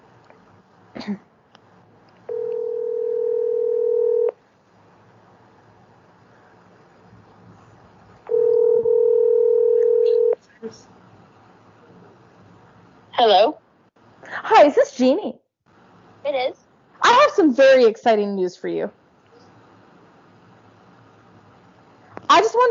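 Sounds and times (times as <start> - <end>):
faint low hum: 0.0 - 22.6
speech: 1.0 - 1.3, 14.7 - 15.4, 17.5 - 19.0
ringback tones from an outgoing phone call: 2.3 - 4.3, 8.3 - 10.4.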